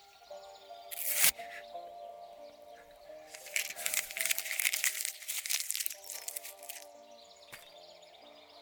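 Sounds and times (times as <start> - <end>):
sheet of paper crumpling and crinkling: 0.9 - 1.3, 3.3 - 6.9.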